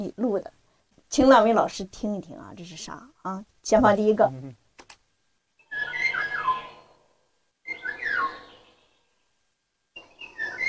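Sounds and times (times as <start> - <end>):
speech: 0.0 - 4.6
bird singing whistled phrases outdoors: 5.6 - 6.9, 7.7 - 8.8, 10.0 - 10.6.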